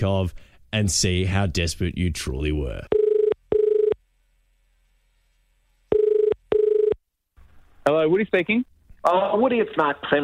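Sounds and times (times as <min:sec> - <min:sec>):
speech: 0:00.0 - 0:03.0, 0:07.9 - 0:10.2
telephone ringing with electronic double-ring: 0:02.9 - 0:04.0, 0:05.9 - 0:07.0.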